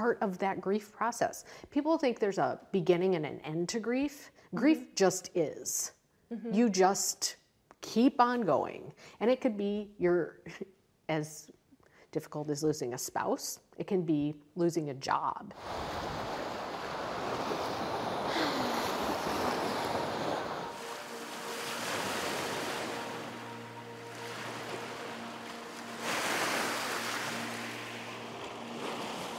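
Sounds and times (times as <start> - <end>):
speech: 0.0 - 16.3
lake water lapping around a boat: 15.6 - 29.3.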